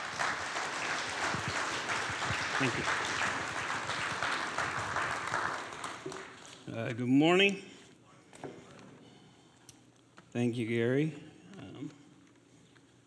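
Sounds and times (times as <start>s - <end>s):
audience applauding to welcome a speaker: 0.0s - 6.8s
speech: 2.6s - 3.1s, 6.8s - 7.7s, 10.4s - 12.0s.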